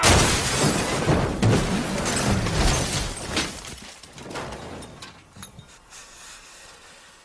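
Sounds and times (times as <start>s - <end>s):
ambulance crashing: 0.0s - 5.4s
glass shattering: 0.0s - 5.7s
debris clattering: 0.0s - 5.9s.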